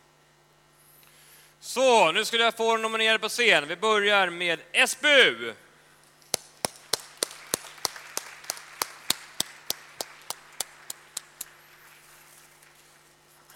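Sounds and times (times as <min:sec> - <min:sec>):
speech: 0:01.7 - 0:05.6
audience clapping at an awards ceremony: 0:06.3 - 0:13.5.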